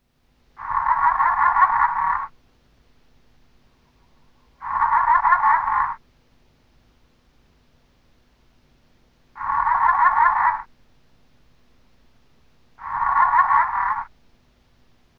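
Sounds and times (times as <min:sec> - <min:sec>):
Discoglossus pictus auritus calling: 0:00.6 - 0:02.4, 0:03.6 - 0:06.0, 0:09.3 - 0:10.8, 0:12.7 - 0:14.2.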